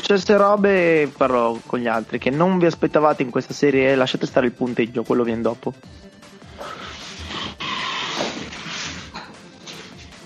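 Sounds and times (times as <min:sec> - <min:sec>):
speech: 0:00.1 - 0:06.1
chair creaking and groaning: 0:06.6 - 0:09.9.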